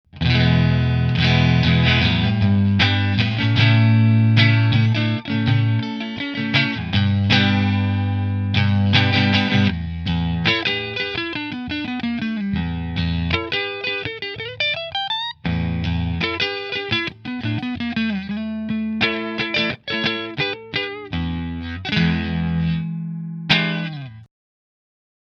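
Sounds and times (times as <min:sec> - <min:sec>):
Fender Strat guitar in Kinman position 1: 0:00.1 - 0:24.3.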